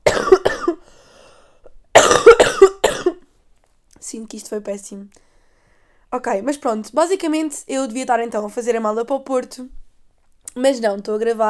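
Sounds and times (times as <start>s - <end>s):
person coughing harshly: 0.0s - 0.9s, 2.0s - 3.2s
speech: 4.3s - 5.2s, 6.1s - 9.8s, 10.6s - 11.4s.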